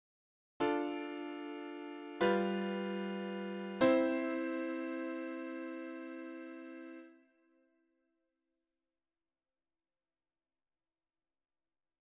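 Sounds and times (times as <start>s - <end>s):
Ii-V-I chord progression without tritone substitution: 0.6s - 7.1s.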